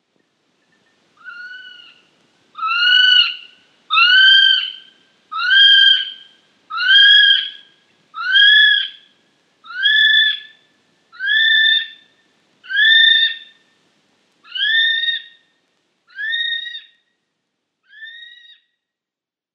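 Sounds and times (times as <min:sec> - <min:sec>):
kiwi calling with shrill piercing whistles: 0:01.2 - 0:12.1, 0:12.7 - 0:13.6, 0:14.5 - 0:15.4, 0:16.1 - 0:17.0, 0:17.9 - 0:18.7.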